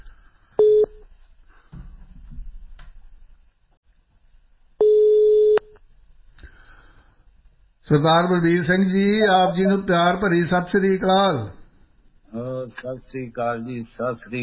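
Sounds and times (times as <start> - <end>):
faint low noise: 0.0 - 14.4
telephone line beeps while a phone call connects: 0.6 - 1.0, 4.8 - 5.7
speech: 7.9 - 11.6, 12.6 - 14.4.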